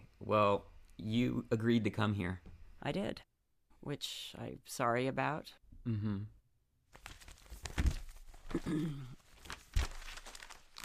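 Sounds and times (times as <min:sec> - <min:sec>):
speech: 0:00.3 - 0:06.4, 0:08.5 - 0:09.2
sharp flicks of paper: 0:06.9 - 0:08.6, 0:09.2 - 0:10.8
sheets of paper with interview questions shuffled: 0:06.9 - 0:10.8.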